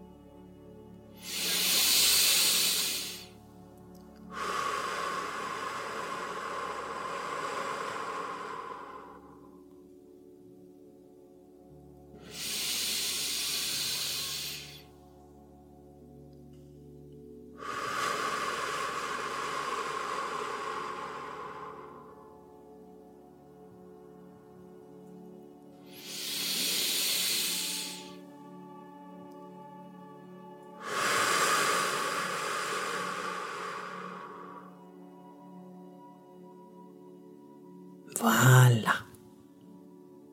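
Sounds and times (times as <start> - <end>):
slow deep breaths in and out: 1.2 - 3.4, 4.2 - 9.7, 12.2 - 14.9, 17.6 - 22.6, 25.8 - 28.3, 30.8 - 35.1.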